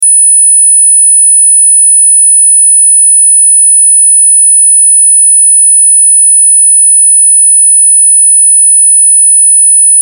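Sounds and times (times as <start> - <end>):
405-line TV line whistle: 0.0 - 10.0.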